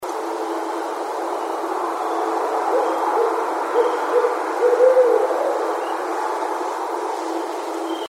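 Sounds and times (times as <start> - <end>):
steady broad hiss: 0.0 - 8.0
barred owl hooting low muffled hoots: 2.0 - 6.1.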